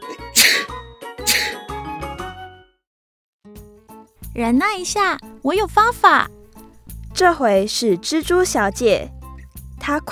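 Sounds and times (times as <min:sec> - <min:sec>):
person acting out a cuckoo clock sneezing: 0:00.0 - 0:00.7, 0:01.3 - 0:01.6
speech: 0:04.4 - 0:06.4, 0:07.2 - 0:09.2, 0:09.8 - 0:10.0.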